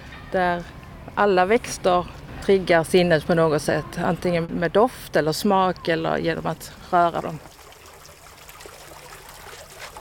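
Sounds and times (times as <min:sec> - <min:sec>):
speech: 0:00.3 - 0:07.5
water trickling over a large diabase stone fountain: 0:07.0 - 0:09.9
small splashes of fountain water: 0:07.2 - 0:09.9.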